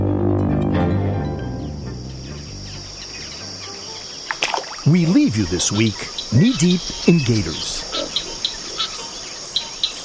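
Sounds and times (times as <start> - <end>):
insect chirping in an Everglades swamp: 1.1 - 10.0
soft steady swamp hiss: 2.0 - 10.0
speech: 4.9 - 7.9.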